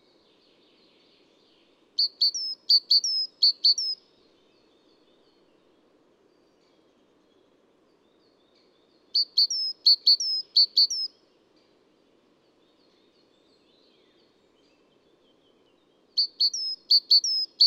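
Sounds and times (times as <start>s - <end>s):
adult male great tit song with high ringing two-note phrases: 2.0s - 4.0s, 9.1s - 11.1s, 16.2s - 17.6s.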